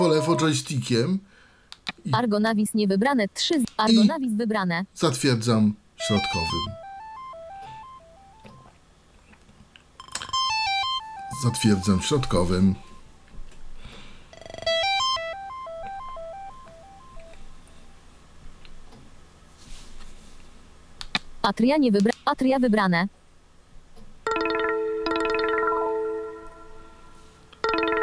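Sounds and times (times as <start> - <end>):
electronic mobile phone ringtone preview melody: 0.0 - 0.5, 6.0 - 8.7, 10.0 - 13.0, 14.4 - 17.5, 24.3 - 28.0
speech: 0.0 - 1.4, 2.0 - 6.8, 11.4 - 12.9, 21.4 - 23.2
quiet noise: 0.0 - 28.0.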